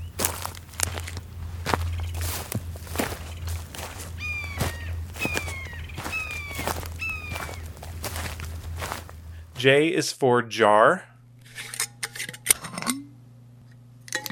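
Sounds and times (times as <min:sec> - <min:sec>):
footsteps of someone hiking crunching along a trail: 0:00.0 - 0:09.8
low hum: 0:00.0 - 0:14.3
high descending bird cries: 0:01.9 - 0:08.4
speech: 0:09.6 - 0:11.1.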